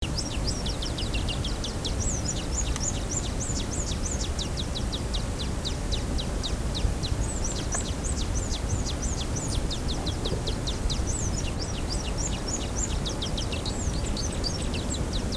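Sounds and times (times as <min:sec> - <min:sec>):
wine-throated hummingbird: 0:00.0 - 0:15.3.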